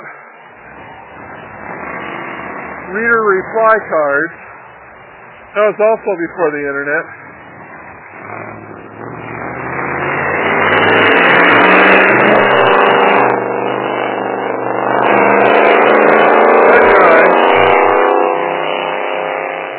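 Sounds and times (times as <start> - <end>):
truck engine running and revving: 0.0 - 19.7
speech: 2.9 - 4.5, 5.5 - 7.2.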